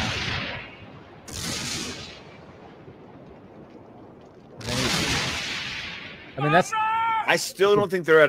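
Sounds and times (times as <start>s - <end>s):
continuous rumble of debris and reverberation: 0.0s - 6.5s
heavy explosions: 0.0s - 6.6s
speech: 6.4s - 8.2s.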